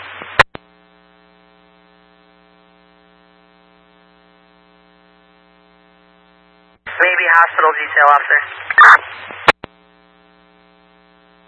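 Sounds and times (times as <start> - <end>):
radio static steady electrical hum: 0.0 - 11.4
speech: 7.4 - 9.4.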